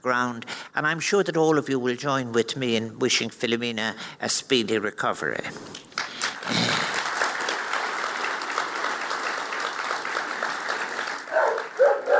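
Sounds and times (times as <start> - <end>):
speech: 0.0 - 5.8
applause-like crackle: 5.7 - 12.1
dog barking sharply: 11.3 - 12.1.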